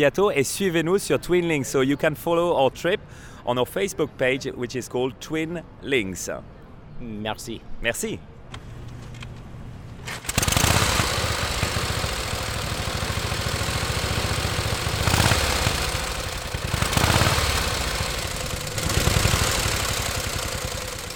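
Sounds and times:
speech: 0.0s - 8.3s
1918 Harley-Davidson motorcycle engine starting and running: 10.1s - 21.1s.

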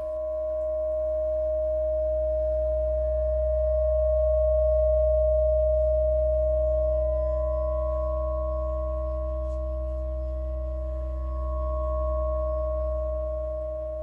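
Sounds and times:
deep low rumble: 0.0s - 14.0s
static guitar drone with layered harmonic overtones: 0.0s - 14.0s.

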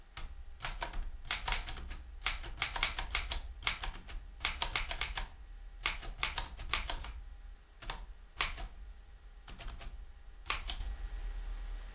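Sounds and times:
keys of a mechanical 1929 typewriter clacking: 0.2s - 7.2s, 7.8s - 8.7s, 9.5s - 10.8s.

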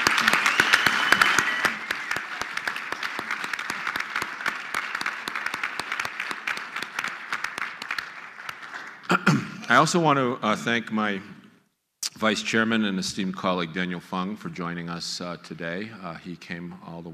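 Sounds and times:
audience clapping: 0.0s - 9.2s
speech: 9.7s - 11.3s, 12.2s - 17.1s.

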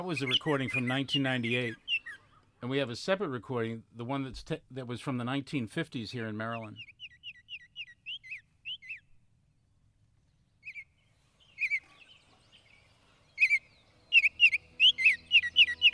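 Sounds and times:
speech: 0.0s - 1.9s, 2.6s - 6.9s
Baltimore oriole singing clear whistled notes: 0.0s - 2.4s, 6.7s - 9.2s, 10.5s - 15.9s.

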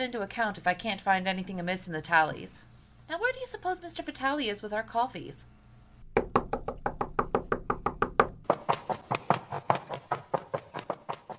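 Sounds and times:
speech: 0.0s - 5.6s
rapid insistent knocking on a wooden door: 6.1s - 11.3s.

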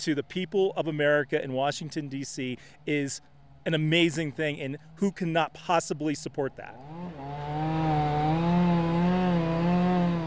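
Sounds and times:
speech: 0.0s - 7.8s
chainsaw cutting through a tree: 6.7s - 10.2s.

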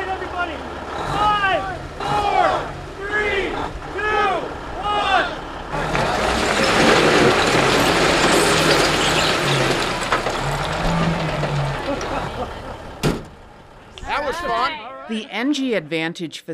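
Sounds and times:
two heavy dump trucks dumping ceremonial first loads: 0.0s - 14.6s
dump truck diesel engines idling: 0.0s - 14.8s
laughter: 11.6s - 13.0s
speech: 15.1s - 16.5s.

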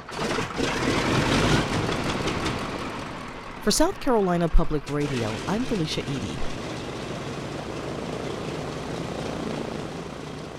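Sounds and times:
World War II Boeing B-17 bomber engines droning before take-off at an airport in Columbia: 0.0s - 10.5s
speech: 3.6s - 6.6s.

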